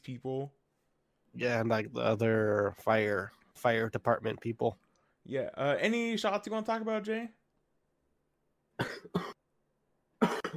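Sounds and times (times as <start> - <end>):
speech: 0.1 - 0.6, 1.3 - 7.4, 9.0 - 9.4
harsh coughs: 8.8 - 9.4, 10.2 - 10.5.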